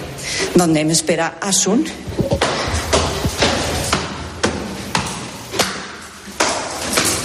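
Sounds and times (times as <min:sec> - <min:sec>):
speech: 0:00.6 - 0:02.4
hard-soled footsteps climbing a staircase in a building in Málaga: 0:02.1 - 0:07.2.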